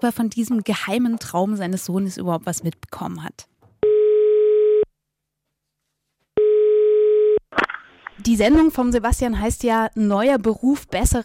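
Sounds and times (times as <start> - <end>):
speech: 0.0 - 3.5, 8.2 - 11.2
telephone line tone while a call is placed: 3.8 - 4.9, 6.4 - 7.4.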